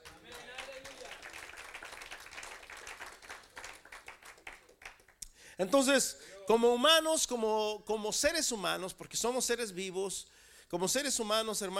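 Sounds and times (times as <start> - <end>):
audience applauding: 0.0 - 5.2
speech: 5.6 - 11.7.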